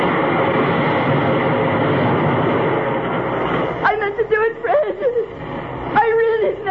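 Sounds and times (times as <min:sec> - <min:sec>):
train wheels and carriages rumbling past: 0:00.0 - 0:06.6.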